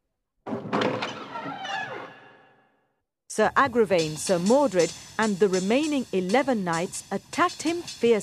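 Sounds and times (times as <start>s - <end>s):
heavy wooden door swinging open: 0.5s - 2.7s
speech: 3.4s - 8.2s.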